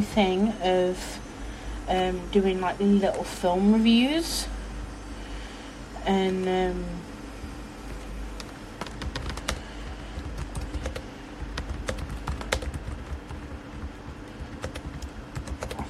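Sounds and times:
speech: 0.0s - 1.2s, 1.9s - 4.6s, 6.0s - 7.1s
low steady hum: 0.0s - 15.8s
rapid typing on a computer keyboard: 8.4s - 15.8s.

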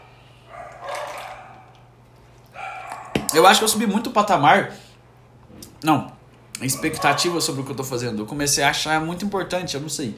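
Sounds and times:
dog barking: 0.5s - 1.8s, 2.5s - 3.4s, 6.6s - 7.6s
speech: 3.3s - 4.9s, 5.8s - 10.1s.

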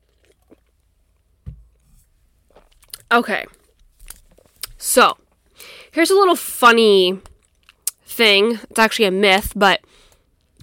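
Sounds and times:
person gulping wine: 0.0s - 0.9s
speech: 3.1s - 3.6s, 4.8s - 7.3s, 8.1s - 9.9s
wet mouth clicks from sipping wine: 7.7s - 8.0s.

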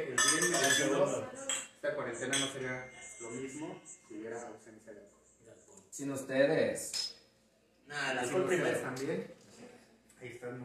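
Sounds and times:
glasses clinking in a toast: 0.0s - 4.0s
speech: 0.0s - 7.2s, 7.9s - 10.6s.

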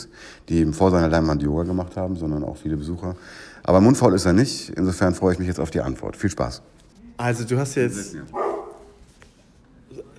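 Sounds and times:
speech: 0.5s - 8.4s
dog barking: 8.3s - 9.0s.

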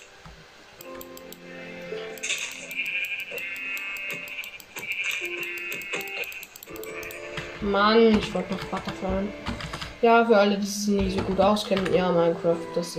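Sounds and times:
clicking, rattling video game sounds: 0.0s - 9.9s
high tonal hum: 0.0s - 11.5s
sheep bleating in a video game: 2.7s - 7.5s
speech: 7.6s - 12.9s.

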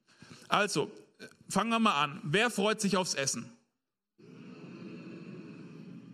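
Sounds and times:
speech: 0.5s - 3.6s
audience humming in response: 4.2s - 6.1s.

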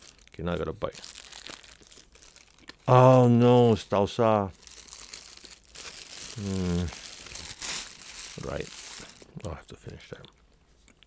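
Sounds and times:
plastic bag wrapping a bun crinkling: 0.0s - 10.0s
speech: 0.4s - 1.2s, 2.9s - 4.6s, 6.4s - 7.0s, 8.4s - 8.8s, 9.4s - 10.4s
person humming or murmuring: 6.3s - 7.1s.

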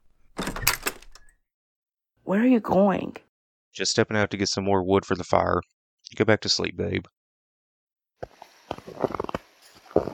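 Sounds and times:
back door opening with latch clicks and rattling: 0.3s - 1.3s
speech: 2.3s - 7.2s.

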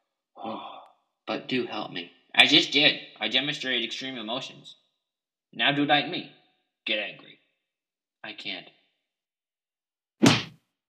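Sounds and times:
speech: 1.3s - 4.8s, 5.5s - 7.3s, 8.2s - 8.8s
slap to the face: 10.2s - 10.6s.

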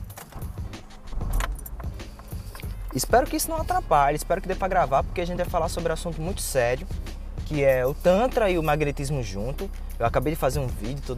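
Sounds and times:
jingling metallic clinks: 0.0s - 3.5s, 7.6s - 10.0s
old car engine cranking and turning over: 0.0s - 11.1s
speech: 2.9s - 11.1s.

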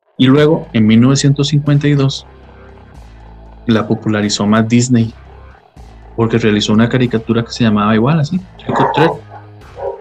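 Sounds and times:
low hum: 0.1s - 9.9s
speech: 0.2s - 2.4s, 3.7s - 5.2s, 6.2s - 9.3s
dog barking: 8.7s - 9.9s.

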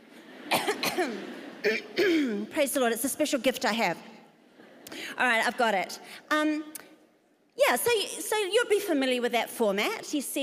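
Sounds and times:
group throat clearing with rasping bursts and grunts: 0.4s - 2.4s
speech: 1.0s - 4.1s, 5.0s - 6.8s, 7.6s - 10.4s.

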